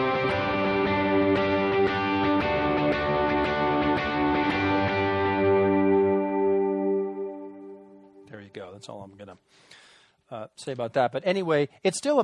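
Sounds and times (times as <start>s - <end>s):
distorted electric guitar playing overdriven chords with echo: 0.0s - 8.8s
speech: 8.8s - 12.2s.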